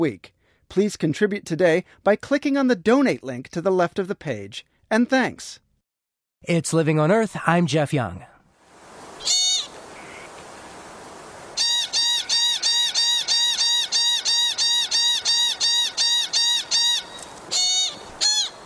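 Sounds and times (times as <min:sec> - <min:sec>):
speech: 0:00.0 - 0:05.6, 0:06.4 - 0:08.3
pika squeaking calls: 0:09.2 - 0:10.3, 0:11.6 - 0:18.6.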